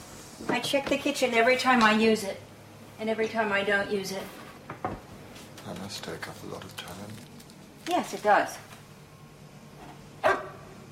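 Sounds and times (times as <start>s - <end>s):
quiet hum: 0.0s - 10.9s
speech: 0.5s - 4.4s, 5.7s - 7.3s, 7.9s - 8.7s
dog barking: 10.2s - 10.8s.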